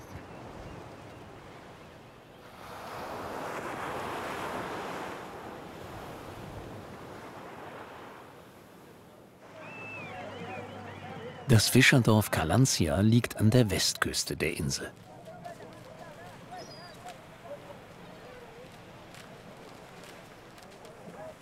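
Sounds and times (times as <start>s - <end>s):
surf rolling onto a kilometres-long sandy beach on Socotra: 0.4s - 21.4s
high seabird cries: 9.4s - 12.6s, 16.4s - 18.7s
speech: 11.5s - 15.1s.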